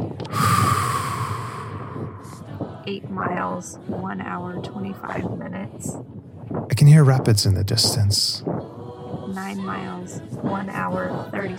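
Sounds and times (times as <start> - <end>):
labored breathing during a long trek: 0.2 - 2.9
speech: 2.9 - 11.5.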